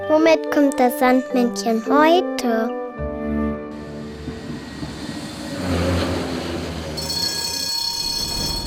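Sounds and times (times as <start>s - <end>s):
speech: 0.2s - 2.8s
tram rumbling along its rails: 3.7s - 8.6s
high-pitched tram wheel squeal: 4.2s - 8.6s.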